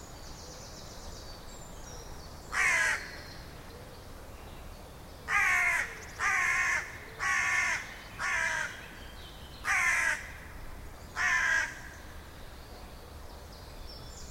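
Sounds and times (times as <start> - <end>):
low steady background hiss: 0.0 - 14.2
Carrion crow cawing, Corvus corone: 2.6 - 3.2, 5.3 - 8.8, 9.6 - 10.5, 11.2 - 12.0.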